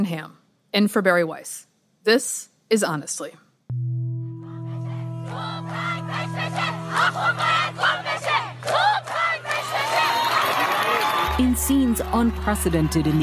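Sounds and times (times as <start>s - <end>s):
speech: 0.0s - 3.8s, 11.4s - 13.2s
large protest crowd cheering: 4.6s - 13.2s.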